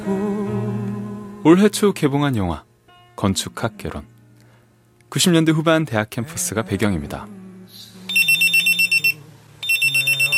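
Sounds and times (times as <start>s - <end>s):
faint low noise: 0.0s - 10.3s
speech: 1.4s - 4.1s, 5.1s - 7.4s
pager beeping: 8.1s - 10.3s.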